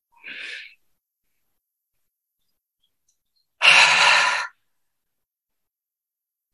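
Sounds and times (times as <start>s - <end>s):
short breath in: 3.6s - 4.6s.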